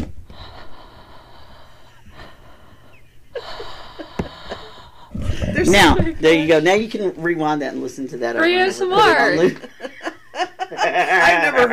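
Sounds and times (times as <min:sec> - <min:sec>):
person breathing into a microphone: 0:00.3 - 0:05.7
speech: 0:05.6 - 0:09.8, 0:11.0 - 0:11.7
laughter: 0:09.2 - 0:11.7.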